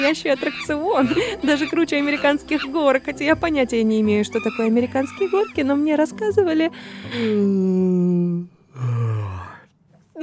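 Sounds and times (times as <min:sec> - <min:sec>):
speech: 0:00.0 - 0:09.1
exhale: 0:06.8 - 0:07.6, 0:08.7 - 0:09.7
voiced drawn-out yawn: 0:07.1 - 0:09.7.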